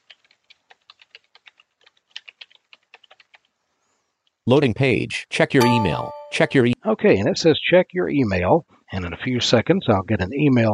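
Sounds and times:
typing an email address on a computer keyboard: 0.0s - 3.5s
speech: 4.5s - 10.7s.

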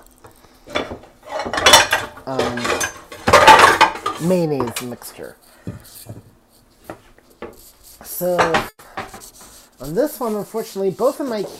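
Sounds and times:
ceramic mixing bowl being taken out and set down among dishes: 0.7s - 5.0s
speech: 2.3s - 2.7s, 4.2s - 6.2s, 8.2s - 8.8s, 9.8s - 11.5s.

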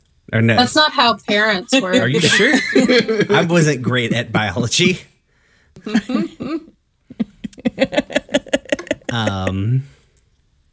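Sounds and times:
speech: 0.3s - 5.1s, 5.8s - 6.7s, 7.8s - 8.1s, 9.1s - 9.9s
laughter: 1.3s - 5.0s, 5.8s - 9.8s
people coughing: 1.9s - 5.0s, 5.8s - 6.7s, 7.8s - 9.8s.

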